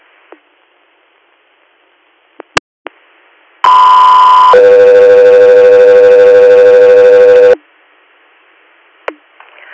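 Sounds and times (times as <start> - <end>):
loud radio dispatch alert tone: 3.6 - 7.6.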